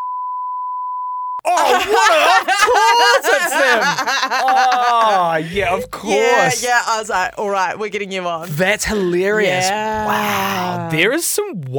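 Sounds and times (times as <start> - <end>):
censor bleep over a spoken name: 0.0 - 1.4
laughter: 1.4 - 6.7
speech: 1.4 - 11.7.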